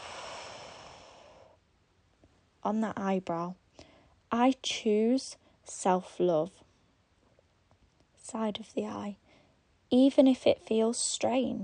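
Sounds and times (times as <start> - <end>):
long deep breath out during a tapping exercise: 0.0 - 1.6
speech: 2.6 - 3.6, 4.3 - 6.6, 8.3 - 9.2, 9.9 - 11.6.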